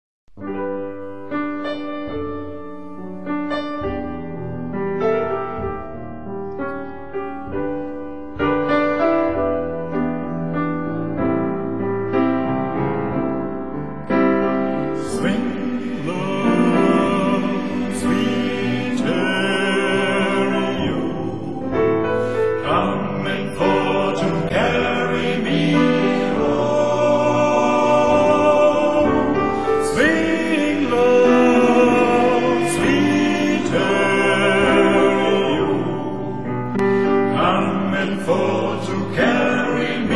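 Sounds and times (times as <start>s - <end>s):
spiritual song: 0.4s - 40.1s.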